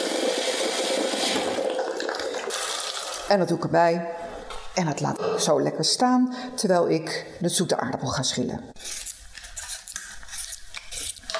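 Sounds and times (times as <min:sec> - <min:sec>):
boiling water pouring into a container for a soup: 0:00.0 - 0:03.3
speech: 0:03.3 - 0:04.2, 0:04.8 - 0:09.0.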